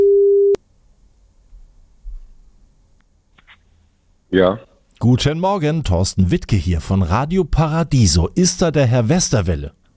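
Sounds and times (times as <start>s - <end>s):
telephone ringing tone while calling: 0.0s - 0.6s
speech: 4.3s - 9.8s.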